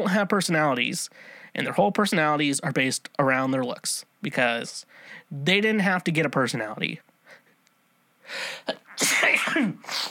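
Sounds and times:
speech: 0.0s - 7.1s, 8.3s - 10.0s
loud sneeze: 8.9s - 10.0s.

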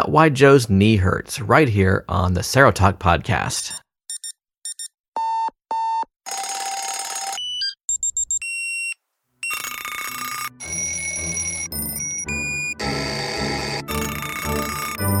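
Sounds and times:
speech: 0.1s - 3.8s
alarm clock beeping: 4.1s - 15.1s
alarm clock bells ringing and clanging: 9.4s - 15.1s.

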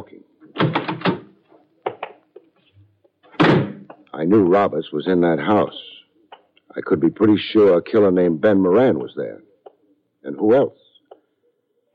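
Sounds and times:
door banging: 0.4s - 1.4s, 3.3s - 4.0s
door opening and closing: 0.4s - 2.1s, 3.2s - 4.0s
speech: 4.2s - 6.0s, 6.8s - 9.5s, 10.2s - 10.8s.

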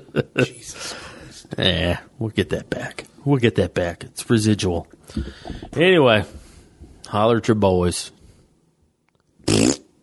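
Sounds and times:
speech: 0.2s - 6.4s, 7.1s - 8.2s
loud buzzy fart sound effect: 9.4s - 9.9s.

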